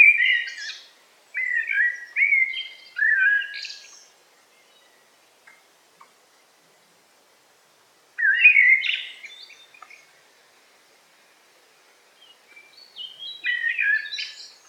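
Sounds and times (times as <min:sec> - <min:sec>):
Eurasian blackbird song in a forest: 0:00.0 - 0:05.6, 0:08.2 - 0:10.5, 0:12.1 - 0:14.6.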